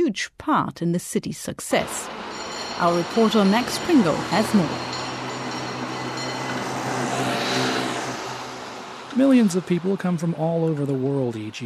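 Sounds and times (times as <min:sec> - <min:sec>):
speech: 0:00.0 - 0:05.0, 0:09.2 - 0:11.6
old cable car rumbling along its track: 0:01.8 - 0:11.4
faint metallic hum: 0:02.0 - 0:10.2.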